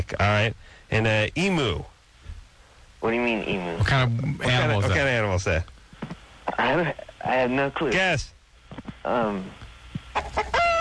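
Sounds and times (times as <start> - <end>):
speech: 0.1 - 1.9, 3.0 - 5.8, 6.6 - 9.6
chicken calling: 10.1 - 10.7.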